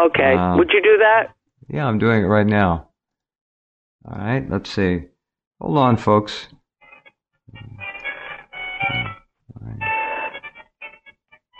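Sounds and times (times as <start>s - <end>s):
speech: 0.0s - 2.9s, 4.0s - 6.6s
cheerful melodic cell phone ringtone: 6.8s - 9.2s, 9.8s - 11.5s.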